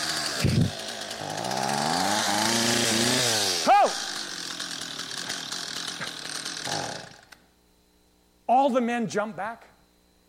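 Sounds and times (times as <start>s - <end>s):
chainsaw starting and running: 0.0s - 7.4s
person exclaiming: 3.5s - 4.2s
speech: 8.7s - 9.7s.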